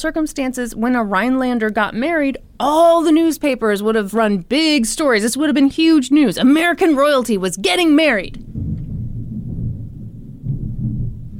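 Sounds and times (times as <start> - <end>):
speech: 0.0 - 8.5
deep rolling thunder: 8.4 - 11.3.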